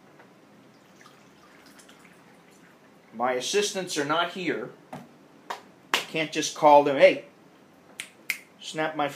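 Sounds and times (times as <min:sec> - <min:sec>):
water running into a glass: 0:00.7 - 0:03.1
speech: 0:03.2 - 0:04.9, 0:06.1 - 0:07.3, 0:08.7 - 0:09.1.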